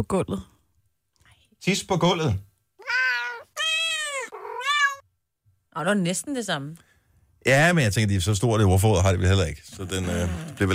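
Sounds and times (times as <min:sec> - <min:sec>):
speech: 0:00.0 - 0:00.5, 0:01.6 - 0:02.5, 0:05.8 - 0:10.7
cat meowing: 0:02.8 - 0:05.1.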